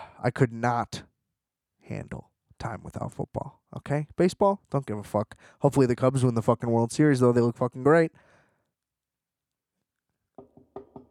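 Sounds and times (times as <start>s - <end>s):
speech: 0.2s - 1.1s, 1.9s - 8.3s
knocking on wood: 10.4s - 11.0s.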